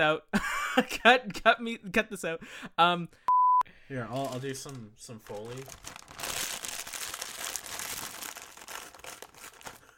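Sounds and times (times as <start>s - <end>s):
speech: 0.0s - 3.2s, 3.9s - 6.0s
plastic cracker bag crinkling and crunching: 4.1s - 9.9s.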